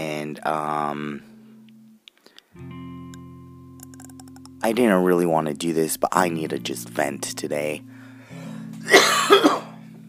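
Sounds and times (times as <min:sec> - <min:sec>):
speech: 0:00.3 - 0:01.3, 0:02.6 - 0:02.9, 0:04.6 - 0:07.9
person coughing: 0:08.8 - 0:09.8.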